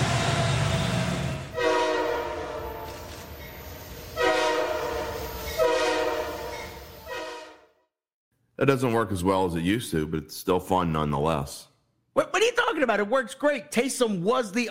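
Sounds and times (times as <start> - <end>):
low rumble of a rolling train: 0.0 - 7.3
loud train horn blasts: 1.5 - 3.1, 4.2 - 7.9
speech: 8.6 - 14.7.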